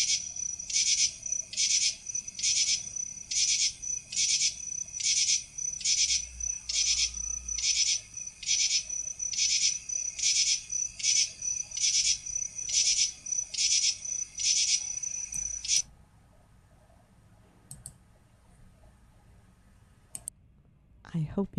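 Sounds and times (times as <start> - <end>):
common true katydid song: 0.0 - 15.8.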